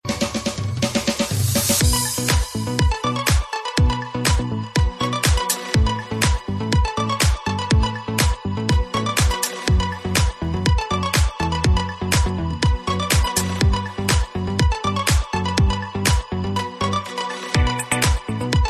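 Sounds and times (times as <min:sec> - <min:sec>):
dance drums: 0:00.0 - 0:16.3, 0:17.6 - 0:18.6.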